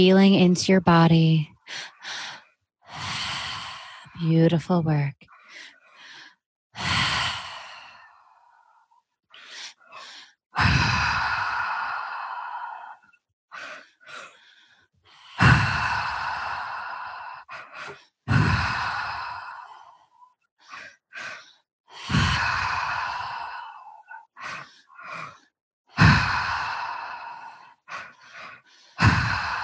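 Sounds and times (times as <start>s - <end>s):
speech: 0.0s - 2.3s, 4.2s - 5.3s
strong deep breathing during a breathwork exercise: 5.4s - 29.6s.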